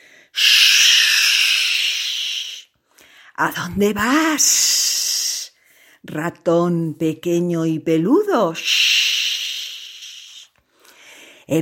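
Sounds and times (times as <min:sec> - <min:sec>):
loud steady snake hiss sound effect: 0:00.3 - 0:02.7, 0:08.6 - 0:10.5
speech: 0:03.4 - 0:04.8, 0:06.0 - 0:08.9.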